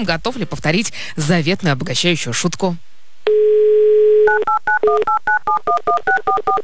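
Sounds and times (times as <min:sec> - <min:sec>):
speech: 0:00.0 - 0:03.6, 0:04.4 - 0:06.6
short touch-tone DTMF beeps dialing a phone number: 0:04.3 - 0:06.6.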